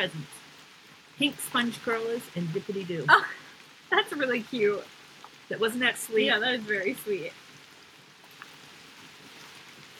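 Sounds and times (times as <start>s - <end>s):
speech: 0.0s - 0.4s, 1.2s - 7.4s
steady rain heard from a porch: 0.0s - 9.9s.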